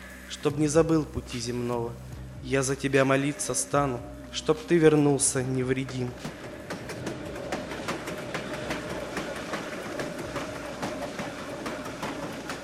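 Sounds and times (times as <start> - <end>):
speech: 0.4 - 6.5
train carriage rattling along rails: 5.3 - 12.6.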